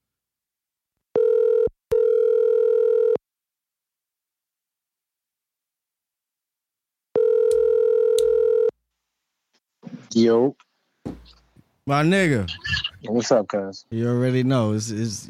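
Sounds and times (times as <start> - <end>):
outgoing phone call ringback tones: 1.2 - 3.2, 7.2 - 8.7
speech: 10.2 - 10.7, 11.9 - 15.2.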